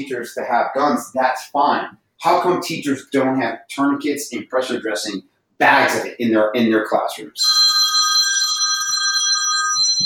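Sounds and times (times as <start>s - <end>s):
speech: 0.0s - 7.6s
mobile phone electronic ringtone: 7.4s - 10.0s.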